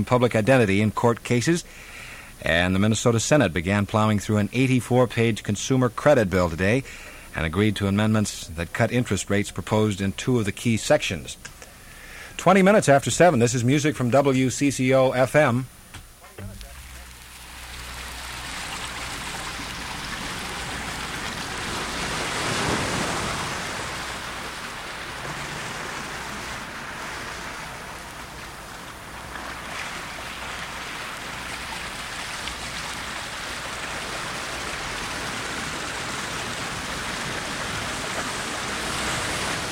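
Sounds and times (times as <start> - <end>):
speech: 0.0 - 11.6, 12.4 - 15.8
river water flowing: 16.4 - 39.7.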